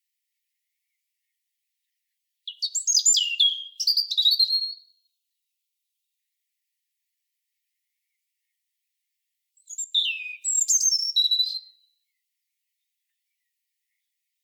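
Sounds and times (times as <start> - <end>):
European robin singing: 2.5 - 5.0, 9.6 - 12.0.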